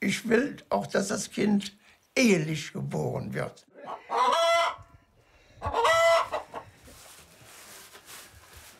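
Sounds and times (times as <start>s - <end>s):
speech: 0.1s - 4.5s
chickens clucking: 3.7s - 7.0s
farmyard rustling: 3.7s - 8.7s
rooster crowing: 3.8s - 4.8s, 5.7s - 6.4s.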